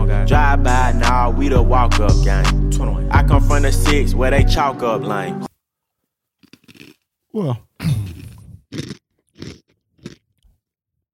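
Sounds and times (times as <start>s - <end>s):
speech: 0.2s - 5.5s, 7.4s - 8.1s
person chewing crisp food close to microphone: 6.4s - 7.1s, 7.8s - 10.6s.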